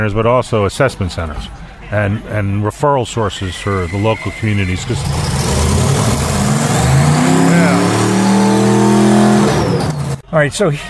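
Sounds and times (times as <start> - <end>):
speech: 0.0 - 5.4, 10.3 - 10.8
car with a loud rumbling faulty muffler accelerating past: 4.7 - 10.2.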